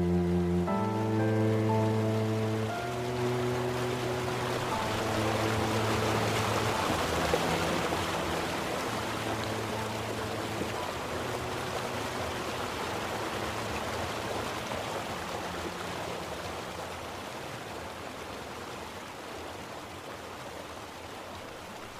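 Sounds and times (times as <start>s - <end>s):
sustained low musical tones: 0.0s - 17.2s
flowing river water rushing: 0.0s - 21.9s.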